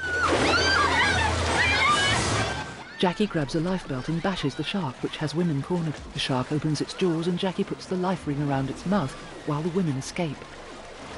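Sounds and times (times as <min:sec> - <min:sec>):
water gushing out of shot-out porthole-style windows in a wall: 0:00.0 - 0:11.1
speech: 0:03.0 - 0:10.6.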